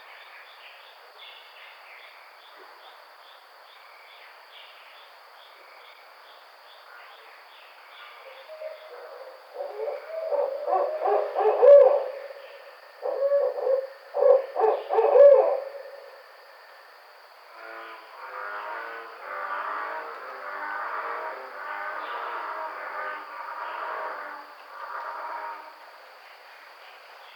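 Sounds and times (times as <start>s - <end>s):
faint high hum: 0.0s - 27.3s
barred owl hooting and cackling: 8.4s - 16.1s.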